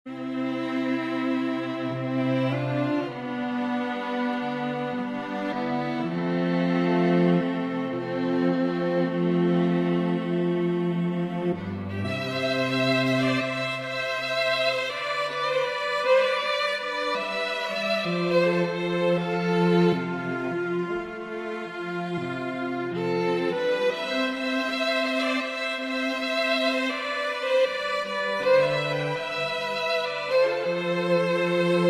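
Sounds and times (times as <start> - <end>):
string trio playing: 0.1 - 31.8.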